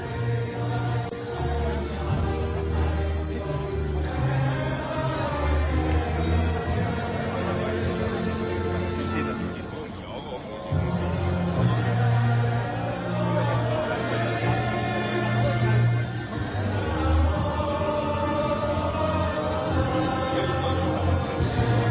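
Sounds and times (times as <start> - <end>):
large crowd of protesters singing the national anthem on the streets of Hong Kong: 0.0 - 9.6, 10.2 - 21.9.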